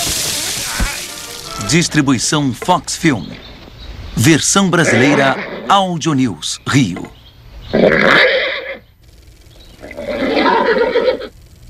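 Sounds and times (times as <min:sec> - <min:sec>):
speech: 0:01.6 - 0:03.5, 0:04.2 - 0:08.4
horse neighing during an eye exam: 0:04.8 - 0:05.7, 0:07.7 - 0:08.8, 0:09.8 - 0:11.3.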